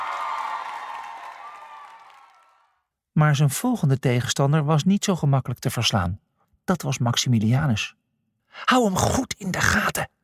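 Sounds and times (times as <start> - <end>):
crowd cheering and clapping for a zebra's victory: 0.0 - 2.8
speech: 3.2 - 10.2.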